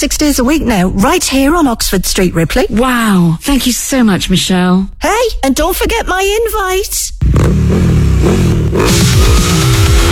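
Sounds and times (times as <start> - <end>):
speech: 0.0 - 10.1
motorcycle engine revving: 7.2 - 10.1.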